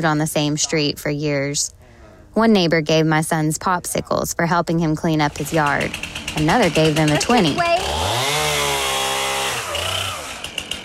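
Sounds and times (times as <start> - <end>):
speech: 0.0 - 1.8, 2.4 - 8.1
chainsaw running: 5.2 - 10.8.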